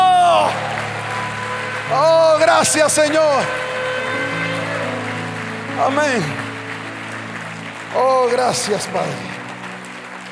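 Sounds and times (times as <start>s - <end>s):
high sustained shout sliding downward: 0.0s - 5.3s
large crowd applauding and cheering: 0.0s - 10.2s
speech: 1.9s - 3.6s, 5.8s - 6.4s, 7.9s - 9.3s.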